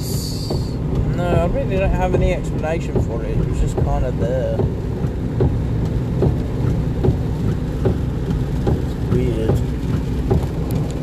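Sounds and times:
steady rain with low rumble and soft drop taps: 0.0s - 11.0s
speech: 1.6s - 5.5s.

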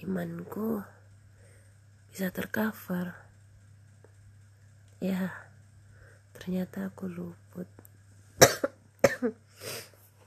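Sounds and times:
speech: 0.0s - 1.0s, 2.1s - 3.2s, 5.0s - 5.5s, 6.4s - 7.8s, 9.2s - 9.9s
low steady hum: 0.0s - 10.2s
person coughing: 8.4s - 9.8s.

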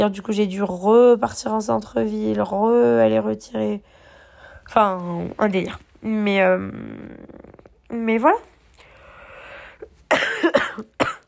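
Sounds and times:
speech: 0.0s - 4.0s, 4.7s - 8.5s
ill woman coughing: 10.1s - 11.2s.

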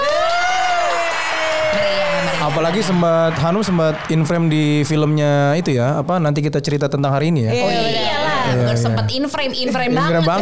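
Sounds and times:
long rising-and-falling shout: 0.0s - 4.9s
few voices whooping and cheering: 0.0s - 5.4s
busy crowd-like background: 0.0s - 10.4s
speech: 2.6s - 10.4s.

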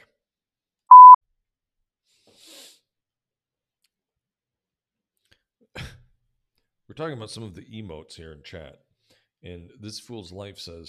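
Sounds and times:
electronic beep: 0.9s - 1.2s
speech: 7.0s - 10.8s.

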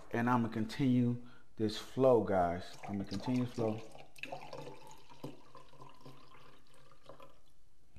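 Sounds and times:
speech: 0.1s - 4.7s
sangria being poured into a glass: 2.6s - 7.5s.

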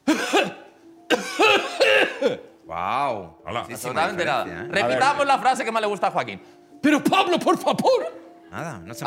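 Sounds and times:
person coughing through a face mask: 0.0s - 2.5s
speech: 2.2s - 9.0s.

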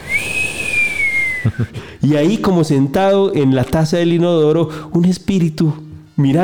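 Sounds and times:
person whistling a long thin note imitating the wind: 0.0s - 1.9s
speech: 1.5s - 6.4s.

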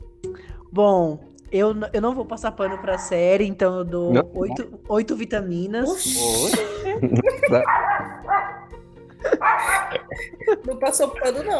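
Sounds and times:
speech: 0.7s - 8.0s, 10.5s - 11.5s
dog barking: 2.6s - 3.2s, 7.5s - 8.7s, 9.3s - 10.1s
laughter: 6.0s - 8.2s, 9.2s - 11.5s.

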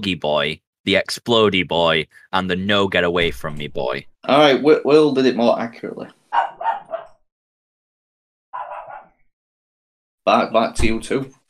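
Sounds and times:
speech: 0.0s - 6.4s, 10.3s - 11.4s
dog barking: 6.3s - 7.2s, 8.6s - 9.2s.

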